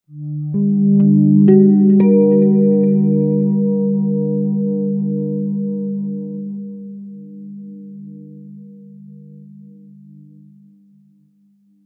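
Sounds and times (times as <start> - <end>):
guitar playing world pop: 0.4 - 5.8.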